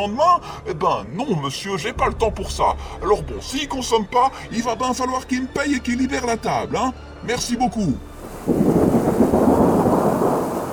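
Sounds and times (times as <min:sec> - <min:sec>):
speech: 0:00.0 - 0:08.6
steady hiss of warm rain with hailstones: 0:08.0 - 0:10.7
deep loud thunder rolling through a storm over green hills: 0:08.1 - 0:10.7.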